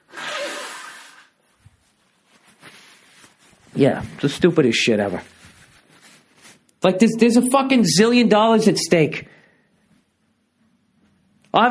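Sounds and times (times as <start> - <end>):
person blowing their nose: 0.0 - 1.6
rustling: 1.4 - 6.7
speech: 3.8 - 5.4, 6.8 - 9.4.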